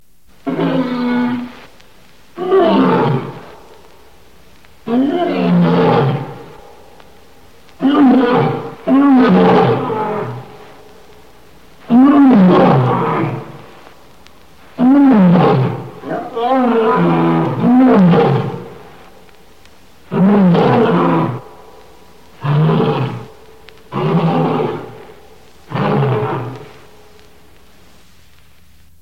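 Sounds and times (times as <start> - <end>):
lion roar ringtone: 0.4 - 1.6, 2.4 - 3.6, 4.9 - 6.6, 7.8 - 10.7, 11.8 - 13.7, 14.8 - 19.0, 20.1 - 21.5, 22.4 - 27.0.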